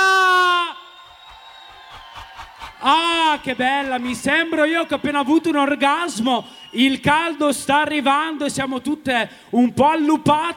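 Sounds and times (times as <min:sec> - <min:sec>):
audience giving a high-pitched cheering scream: 0:00.0 - 0:07.7
speech: 0:02.8 - 0:10.5.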